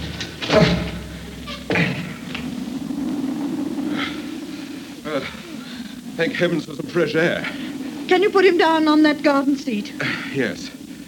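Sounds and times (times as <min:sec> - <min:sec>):
door pushed open with a heavy thud: 0:00.0 - 0:02.0
second clunk: 0:00.0 - 0:02.4
steady low rumble: 0:00.0 - 0:10.0
speech: 0:06.2 - 0:10.8.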